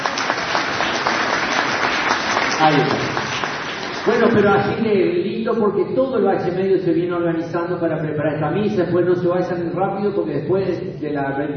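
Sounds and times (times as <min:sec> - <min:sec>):
crowd applauding the altar boys at a Mass: 0:00.0 - 0:04.8
speech: 0:02.6 - 0:03.1, 0:04.0 - 0:11.5.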